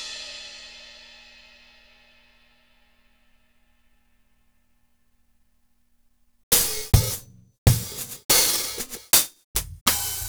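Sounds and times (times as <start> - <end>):
sliced drum samples from a sampler: 6.5 - 10.2.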